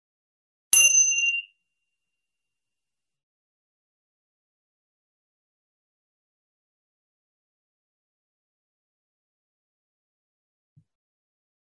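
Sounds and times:
small bell ringing: 0.8 - 1.6.

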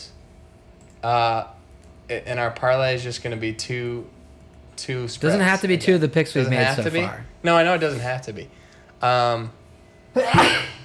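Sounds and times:
speech: 1.0 - 4.2, 4.8 - 10.7
sneeze: 10.2 - 10.8.

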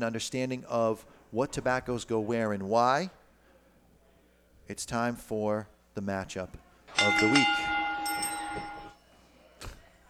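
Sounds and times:
speech: 0.0 - 3.2, 4.7 - 7.8, 8.5 - 8.7
bell ringing with a bright sustained metallic tone: 6.9 - 9.0.

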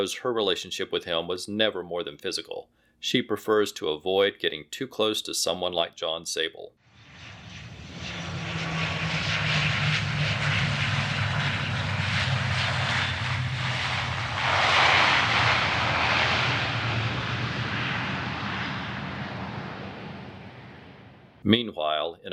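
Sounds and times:
speech: 0.0 - 6.8, 21.4 - 22.3
passenger jet landing on a runway: 6.9 - 21.4.

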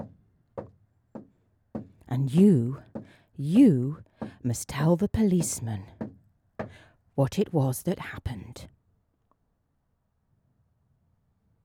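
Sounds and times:
firm knocks on a door: 0.0 - 3.1, 5.4 - 6.8
speech: 2.1 - 6.0, 6.7 - 8.7.

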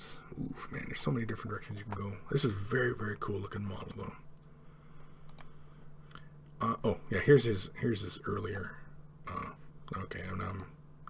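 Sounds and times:
low steady hum: 0.0 - 11.0
speech: 1.0 - 4.3, 6.6 - 10.8
computer mouse clicking: 5.2 - 6.3.

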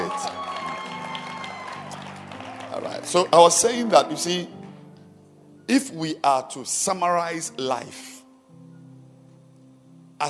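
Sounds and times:
audience cheering voices: 0.0 - 4.2
audience applauding film stars: 0.0 - 4.8
speech: 2.8 - 4.6, 5.7 - 8.1.

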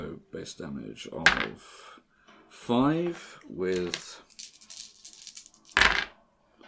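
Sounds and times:
speech: 0.2 - 4.6
dice rolling on a table during a tabletop role-playing game: 3.7 - 6.2.

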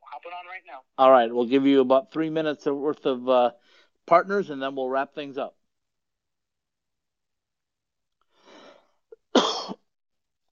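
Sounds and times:
speech: 0.2 - 5.6
person coughing: 9.2 - 9.8.

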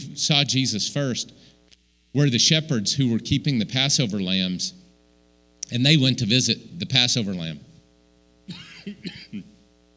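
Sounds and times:
speech: 0.2 - 1.5, 2.1 - 4.8, 5.7 - 7.7, 8.5 - 9.5
person with a days-long cough coughing harshly: 8.5 - 9.6.

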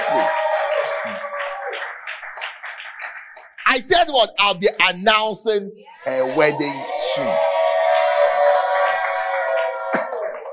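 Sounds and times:
audience clapping and cheering for a pastor: 0.0 - 4.6, 6.0 - 10.5
speech: 3.7 - 7.5.

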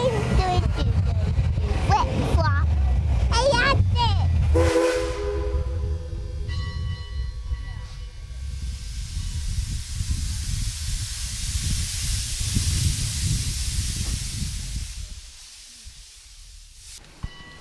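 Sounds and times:
train moving along an Appalachian logging railway: 0.0 - 17.5
train whistle: 4.5 - 6.4.

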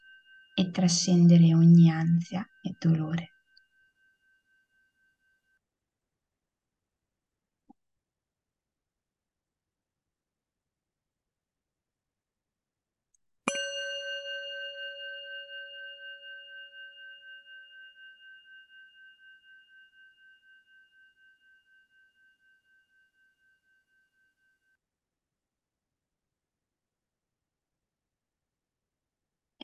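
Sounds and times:
meditation bell being struck: 0.0 - 5.6, 13.5 - 24.8
speech: 0.6 - 3.3.

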